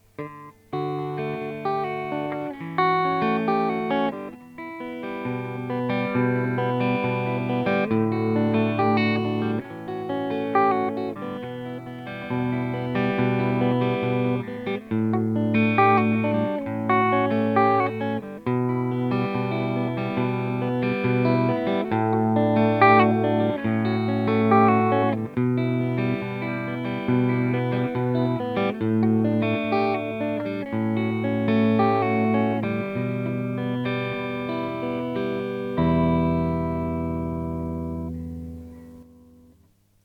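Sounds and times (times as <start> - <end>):
clean guitar on neck P90 pickup: 0.0 - 39.7.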